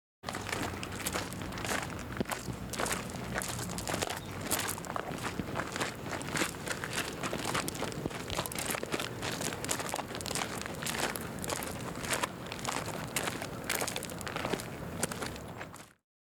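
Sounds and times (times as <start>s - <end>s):
footsteps on grass and dirt: 0.3s - 15.9s.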